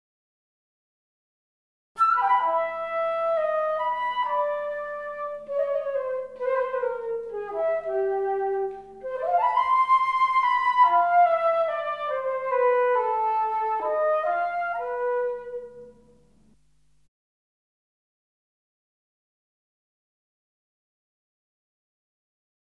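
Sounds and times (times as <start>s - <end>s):
transverse flute: 2.0s - 16.3s.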